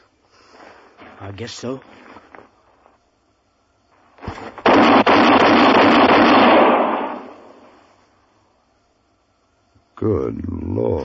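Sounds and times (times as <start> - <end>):
speech: 1.2 - 2.0, 10.0 - 11.0
gunshots fired from a loaded gun: 4.6 - 7.7.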